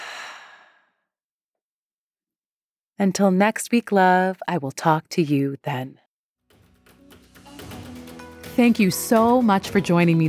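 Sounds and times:
deep breath in, held, then exhaled: 0.0s - 1.1s
speech: 3.0s - 6.0s, 8.6s - 10.2s.

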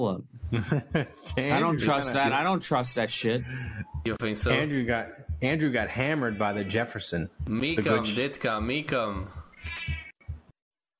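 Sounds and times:
speech: 0.0s - 9.4s
cat meowing: 9.5s - 10.3s.

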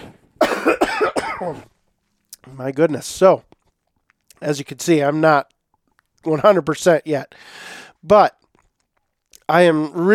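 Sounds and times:
harsh barking coughs: 0.4s - 1.7s
speech: 1.4s - 1.7s, 2.4s - 3.5s, 4.4s - 5.5s, 6.2s - 8.4s, 9.5s - 10.1s.

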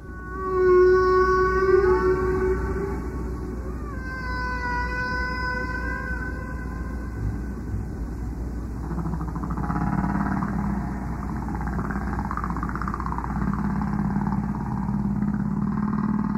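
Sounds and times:
recorded whale song on tape: 0.0s - 16.3s
steady tape hiss: 0.0s - 16.3s.

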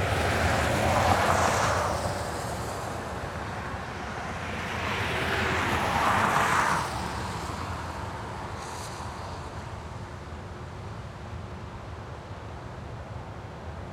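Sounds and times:
tyre hiss of cars passing on a wet road: 0.1s - 11.1s.

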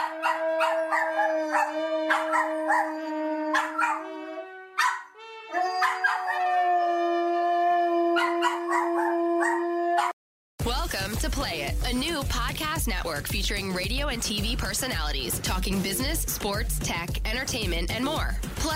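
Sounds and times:
dogs barking and yipping: 0.0s - 4.2s, 4.8s - 6.7s, 8.1s - 10.2s
dogs howling: 0.0s - 10.2s
speech: 10.9s - 18.7s.

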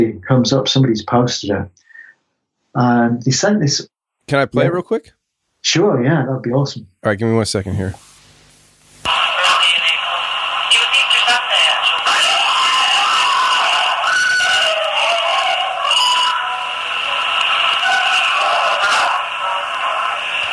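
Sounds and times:
speech: 0.0s - 1.8s, 2.8s - 8.1s
crackles and noise bursts: 7.2s - 20.5s
blood-curdling scream from a distorted radio-like recording: 9.1s - 20.5s.

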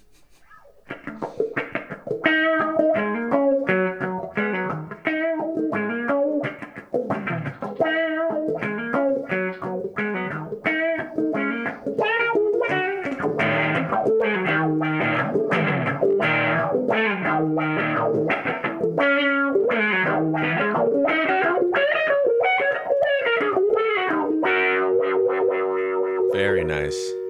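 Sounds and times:
distorted electric guitar played through wah pedal: 0.6s - 26.4s.

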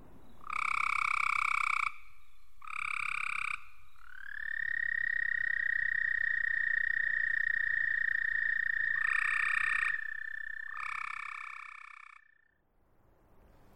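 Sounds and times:
American toad trilling call: 0.4s - 12.5s.

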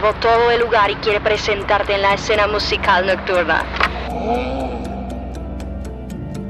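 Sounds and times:
traffic on a city-centre street in front of an old jazz club: 0.0s - 4.1s
speech: 0.0s - 4.7s.

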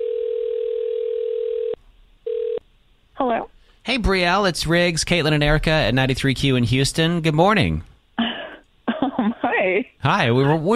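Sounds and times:
telephone dial tone: 0.0s - 2.6s
speech: 3.2s - 7.9s, 9.7s - 10.7s.

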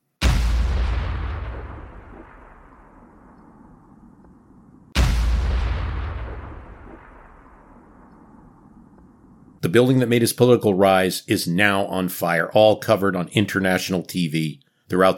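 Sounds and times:
artillery shots fired at the upper floors of a building: 0.2s - 9.6s
speech: 9.6s - 15.1s.

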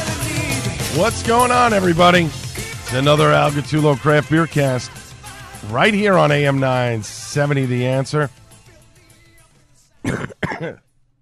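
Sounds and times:
speech: 1.0s - 5.0s, 5.6s - 8.4s, 10.0s - 10.8s
radio host coughing: 10.0s - 10.9s
radio host rough throat clear: 10.0s - 10.9s.

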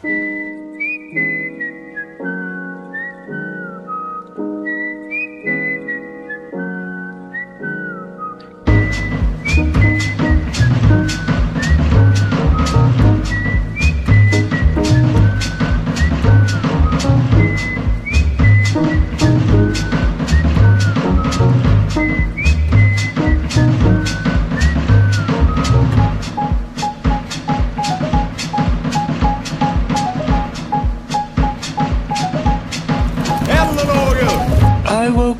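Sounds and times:
clear bright whistled melody in a song: 0.0s - 35.2s
full band playing: 8.7s - 35.1s.

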